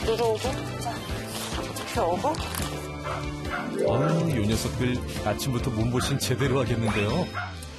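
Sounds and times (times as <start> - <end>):
speech: 0.1 - 7.6
dogs barking and yipping as breakfast is prepared: 3.0 - 3.8.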